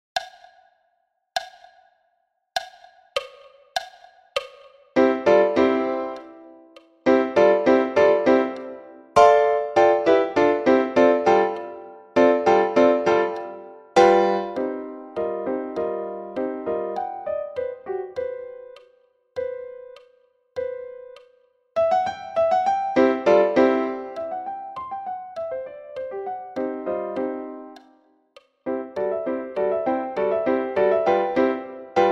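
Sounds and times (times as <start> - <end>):
piano playing at 100 bpm: 5.0 - 18.8, 21.8 - 27.9, 28.7 - 32.1.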